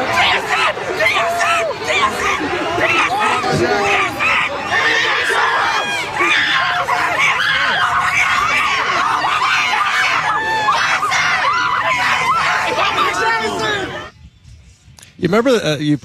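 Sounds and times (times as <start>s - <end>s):
laughter: 0.0s - 14.1s
noisy crowd of cheering, chattering fans: 0.0s - 14.1s
child screaming excitedly at high pitch: 2.8s - 13.9s
speech: 15.3s - 16.0s.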